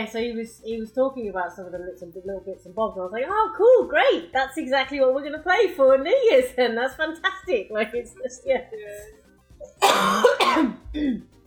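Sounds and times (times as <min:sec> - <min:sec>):
speech: 0:00.0 - 0:11.4
person with a cold coughing harshly: 0:09.6 - 0:11.3
throaty rumble clearing the throat: 0:09.8 - 0:11.3.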